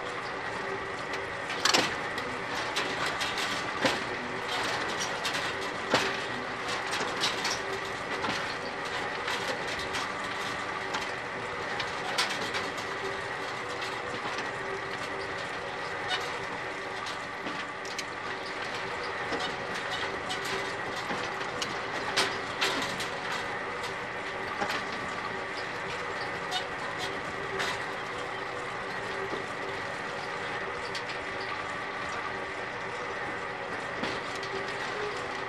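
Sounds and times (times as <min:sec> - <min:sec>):
backwater windmill turning: 0:00.0 - 0:35.4.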